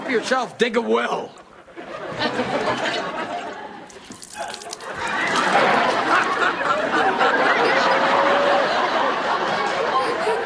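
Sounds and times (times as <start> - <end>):
speech: 0.1 - 1.4
laughter: 1.4 - 10.4
water spilling from a trick dribble glass: 3.9 - 5.7.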